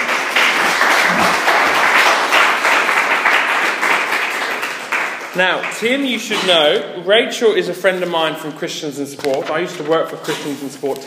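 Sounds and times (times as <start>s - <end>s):
crowd applauding: 0.0s - 6.2s
speech: 5.4s - 11.0s.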